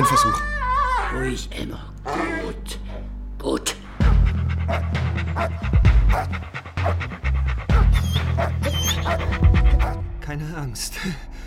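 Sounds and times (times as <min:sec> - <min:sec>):
speech: 0:00.0 - 0:00.5, 0:01.1 - 0:02.8, 0:10.3 - 0:11.4
person imitating a dog's panting as a theatrical act: 0:04.0 - 0:10.0.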